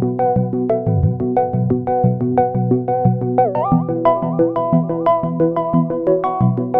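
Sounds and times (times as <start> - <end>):
synthesizer arpeggio: 0.2 - 2.4, 3.4 - 6.7.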